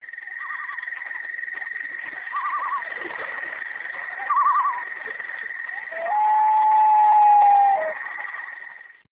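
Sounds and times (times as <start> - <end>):
loon calling on a lake: 0.3 - 1.0, 2.2 - 3.2, 3.9 - 8.6.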